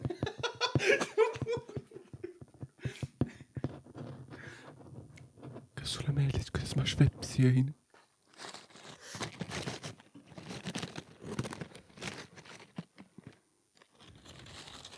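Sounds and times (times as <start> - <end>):
laughter: 0.0 - 2.4
speech: 5.9 - 7.8
person biting into potato crisps: 8.3 - 13.2, 13.8 - 14.9.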